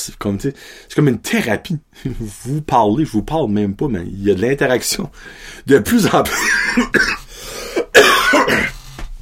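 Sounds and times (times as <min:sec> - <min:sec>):
speech: 0:00.0 - 0:07.2
person coughing with harsh rasping bursts: 0:06.1 - 0:08.9.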